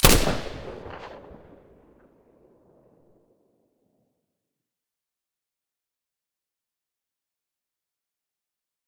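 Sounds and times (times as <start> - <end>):
silenced rifle gunshot: 0.0 - 1.7.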